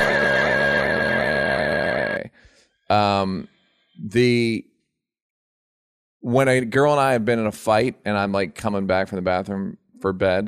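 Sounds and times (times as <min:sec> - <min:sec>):
person imitating a horse neigh: 0:00.0 - 0:02.3
speech: 0:02.9 - 0:04.7, 0:06.2 - 0:10.4.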